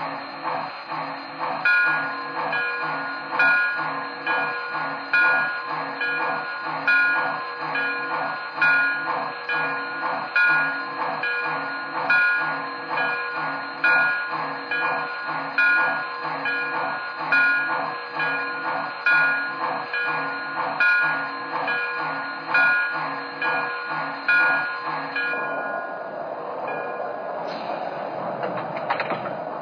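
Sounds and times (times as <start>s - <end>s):
train rolling in with rhythmic clattering: 0.0s - 29.6s
train air brakes hissing: 27.4s - 28.2s.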